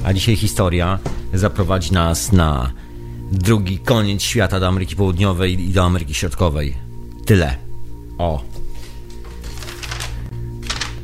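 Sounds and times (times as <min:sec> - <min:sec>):
speech: 0:00.1 - 0:07.6, 0:08.2 - 0:08.6
paper notes rustling and crinkling: 0:08.7 - 0:11.0.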